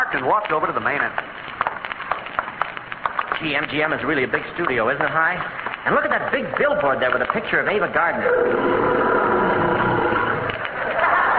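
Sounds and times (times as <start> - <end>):
speech: 0.1 - 1.6, 3.4 - 9.1
lion roaring: 8.1 - 11.3.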